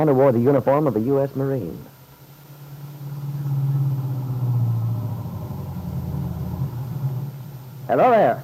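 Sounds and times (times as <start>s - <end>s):
speech: 0.0s - 1.9s, 7.9s - 8.4s
car engine humming: 1.3s - 8.4s
faint road rumble: 2.2s - 8.4s.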